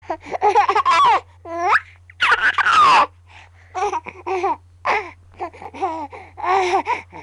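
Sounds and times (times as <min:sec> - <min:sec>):
baby laughing: 0:00.2 - 0:03.1, 0:03.8 - 0:05.0.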